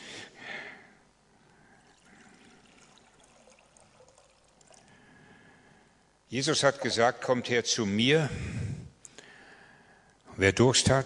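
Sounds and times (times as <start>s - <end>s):
water pouring into a glass: 1.8s - 5.1s
speech: 6.3s - 8.6s, 10.4s - 11.0s.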